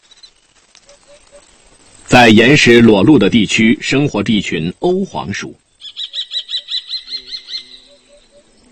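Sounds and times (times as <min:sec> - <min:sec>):
kestrel calling while circling a rocky cliff face: 0:00.0 - 0:01.6, 0:05.7 - 0:08.7
speech: 0:01.1 - 0:05.6.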